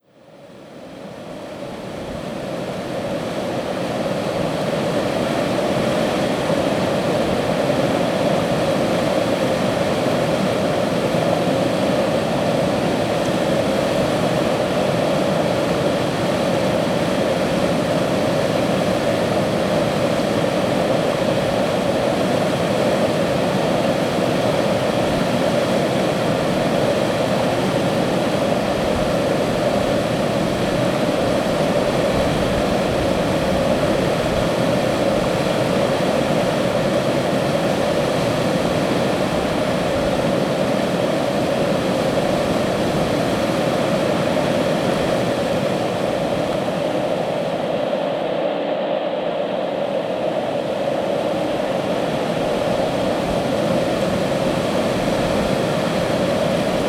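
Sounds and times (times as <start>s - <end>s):
wind: 0.1s - 56.8s
white noise: 11.1s - 56.8s.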